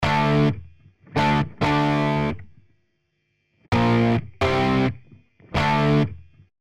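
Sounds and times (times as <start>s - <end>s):
electric guitar with op-amp distortion: 0.0s - 2.5s, 3.7s - 6.2s.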